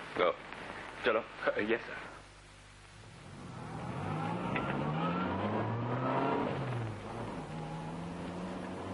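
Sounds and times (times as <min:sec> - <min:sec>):
speech: 0:00.2 - 0:02.1
car engine accelerating as the vehicle pulls away from a traffic light: 0:03.2 - 0:08.9.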